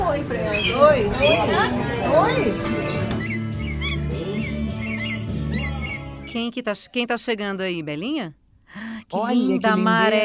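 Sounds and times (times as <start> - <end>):
speech: 0.3 - 2.9, 6.3 - 10.2
pet parrots squawking and chirping: 0.4 - 6.4.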